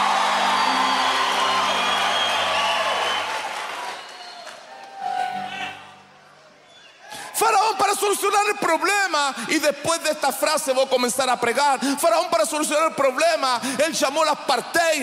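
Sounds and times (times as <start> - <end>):
whoops and sustained cries: 0.0 - 5.9
audience at a religious service shouting and cheering: 0.0 - 8.3
speech: 7.5 - 15.0.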